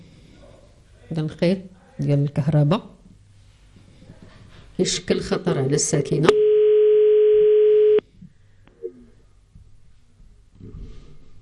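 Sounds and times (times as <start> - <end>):
speech: 1.1 - 2.9, 4.8 - 6.4
telephone ringing call tone electronic buzz: 6.3 - 8.0.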